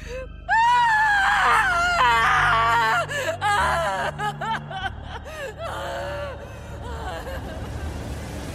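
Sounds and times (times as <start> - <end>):
person sobbing and wailing: 0.0 - 8.4
person giving anguished wavering screams: 0.5 - 7.9
person gasping: 3.1 - 3.4, 5.0 - 7.6.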